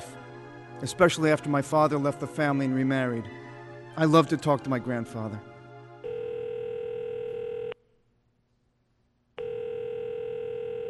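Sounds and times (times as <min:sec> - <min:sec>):
speech: 0:00.8 - 0:03.4, 0:04.0 - 0:05.5
unanswered phone call electronic ring tones: 0:06.0 - 0:07.8, 0:09.4 - 0:10.8.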